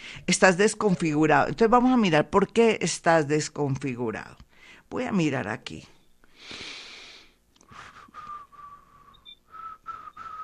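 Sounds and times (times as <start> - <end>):
speech: 0.2 - 6.7
person whistling a tune: 7.7 - 10.4.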